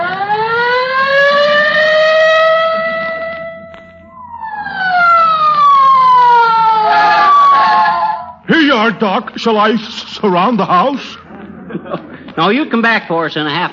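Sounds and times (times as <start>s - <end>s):
police squad car siren wailing as the car speeds away: 0.0s - 8.8s
speech: 9.0s - 11.2s, 11.8s - 13.7s
laughter: 11.0s - 12.7s.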